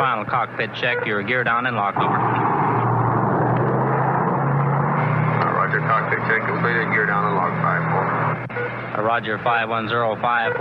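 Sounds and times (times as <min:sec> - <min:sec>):
speech: 0:00.0 - 0:02.8, 0:06.2 - 0:10.6
C-124 aircraft engines droning in flight through ice fog: 0:01.5 - 0:10.3.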